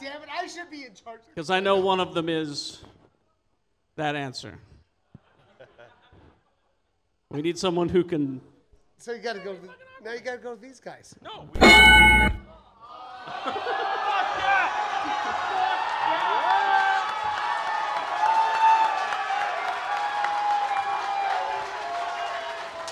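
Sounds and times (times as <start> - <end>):
speech: 0.4 - 3.0, 4.0 - 4.7, 7.3 - 12.4, 13.2 - 14.0
laughter: 5.1 - 6.7, 13.2 - 15.7
live crowd cheering with whoops and shouting: 12.8 - 22.9
live audience steady clapping: 15.1 - 22.9.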